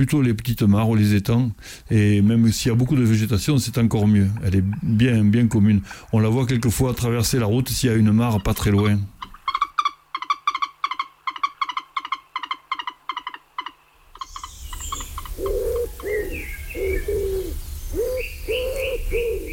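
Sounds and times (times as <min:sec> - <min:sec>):
speech: 0:00.0 - 0:09.2
steady outdoor hiss: 0:00.0 - 0:19.5
common wood pigeon cooing: 0:03.8 - 0:06.0, 0:08.4 - 0:19.5
bird chattering calls: 0:08.1 - 0:19.5.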